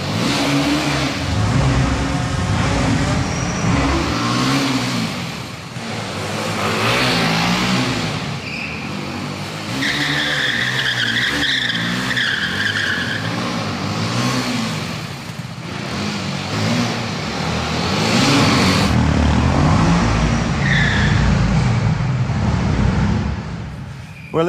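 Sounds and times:
motorcycle engine revving during wheelies: 0.0 - 23.5.

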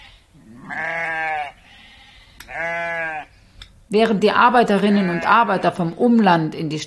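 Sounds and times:
sheep bleating: 0.0 - 3.3, 4.7 - 5.8
faint noise: 0.0 - 6.8
speech: 3.9 - 6.8.

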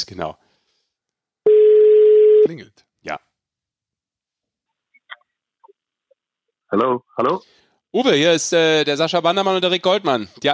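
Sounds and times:
speech: 0.1 - 0.4, 2.4 - 3.2, 6.7 - 10.5
telephone ringing tone as a phone call is placed: 1.5 - 2.5.

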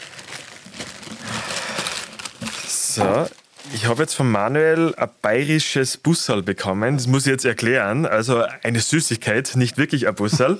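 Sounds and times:
thin grey wrapping paper crinkling as a gift is opened: 0.0 - 4.2
speech: 3.0 - 10.5.

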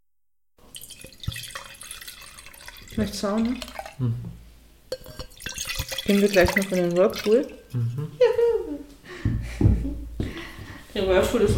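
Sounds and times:
small drips and clinks of a wine glass: 0.6 - 4.0, 4.9 - 7.8
wine pouring into a glass: 0.6 - 4.1, 4.9 - 7.9
speech: 3.0 - 4.4, 6.1 - 8.2, 11.0 - 11.5.

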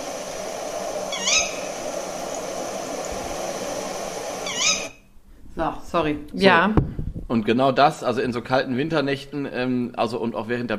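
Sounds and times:
female tawny owl calling ke-wick: 0.0 - 5.0
steady hiss: 0.0 - 10.7
speech: 5.6 - 10.7.

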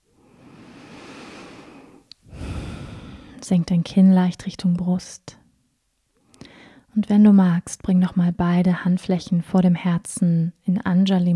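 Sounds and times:
deep breathing during a guided yoga meditation: 0.2 - 3.4, 6.4 - 6.9
speech: 3.4 - 5.4, 7.0 - 11.3.

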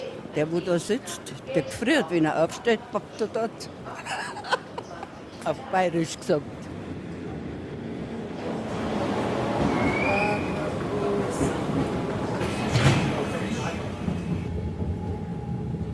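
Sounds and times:
speech: 0.4 - 4.4, 5.4 - 6.6
laughter: 3.9 - 5.2
train rumbling as it begins to move through the Alpine foothills: 5.8 - 15.9
indistinct voices murmuring: 8.2 - 14.6.

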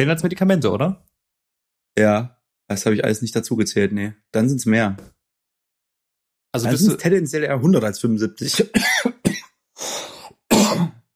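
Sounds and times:
speech: 0.0 - 1.1, 2.0 - 5.2, 6.5 - 10.1
harsh throaty coughs: 8.4 - 11.1.

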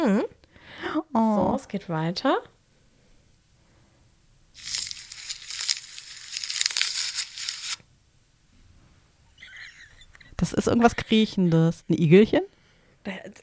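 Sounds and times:
speech: 0.0 - 0.4, 1.0 - 2.5, 10.4 - 13.4
brief faint crinkling rustle: 4.6 - 7.8
rough tearing imitating a giraffe stripping leaves from branches: 4.6 - 7.8.

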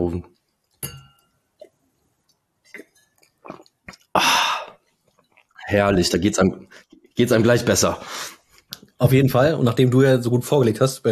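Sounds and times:
speech: 0.1 - 0.4, 5.7 - 8.4, 9.0 - 11.0
soft glassy taps of wine glasses: 0.7 - 3.4
glasses of red wine clinking in a toast: 0.8 - 1.4
sipping wine: 2.6 - 5.7.

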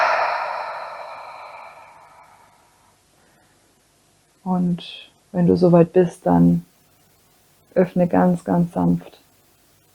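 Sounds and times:
long breath exhaled through the mouth during a guided meditation: 0.0 - 2.5
speech: 4.4 - 6.7, 7.7 - 9.2.

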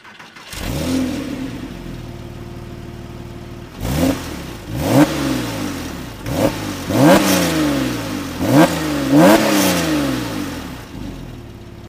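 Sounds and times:
Porsche 911 997.1 Carrera S flat-six engine starting, idling and revving: 0.0 - 11.8.

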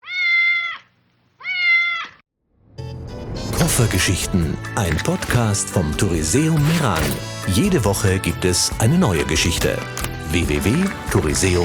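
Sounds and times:
cat meowing: 0.0 - 2.2
speech: 3.8 - 11.6.

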